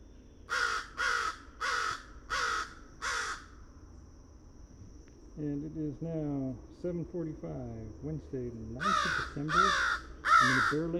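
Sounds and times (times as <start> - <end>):
American crows cawing: 0.5 - 3.6, 8.8 - 10.9
speech: 5.4 - 10.9.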